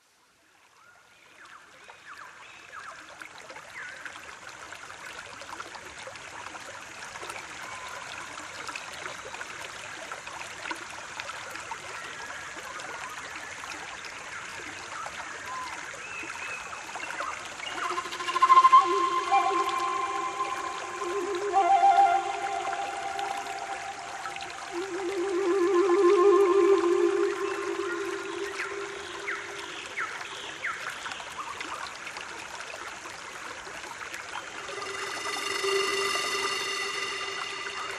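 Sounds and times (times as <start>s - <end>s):
Indian relaxation music at 432 Hz: 17.7s - 29.9s, 34.5s - 37.9s.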